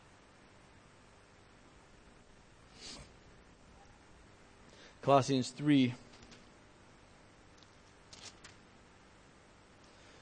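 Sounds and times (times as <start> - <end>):
speech: 5.0 - 6.0
paper crinkling: 7.6 - 8.6
book page being turned: 8.1 - 8.6.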